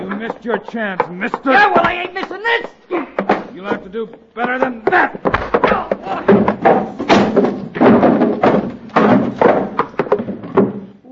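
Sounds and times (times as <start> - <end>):
speech: 0.2 - 5.5
shelves and cupboards in a shop knocked over in a fight: 5.2 - 10.9.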